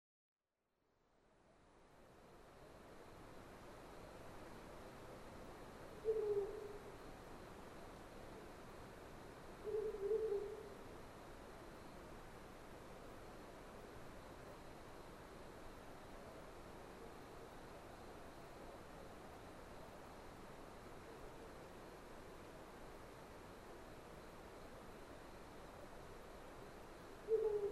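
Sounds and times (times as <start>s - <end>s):
Ural owl calling: 6.0s - 6.9s, 9.6s - 10.7s, 27.3s - 27.6s.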